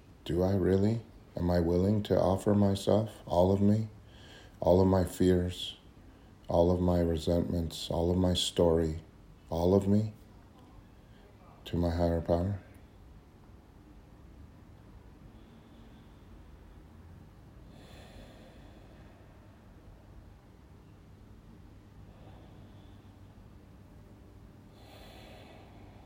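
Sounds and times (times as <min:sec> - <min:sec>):
faint steady hiss: 0:00.0 - 0:26.0
speech: 0:00.3 - 0:04.0, 0:04.6 - 0:05.8, 0:06.5 - 0:10.2, 0:11.7 - 0:12.6
slow deep breaths: 0:03.9 - 0:04.7, 0:05.6 - 0:06.5, 0:10.2 - 0:11.6, 0:14.5 - 0:26.0.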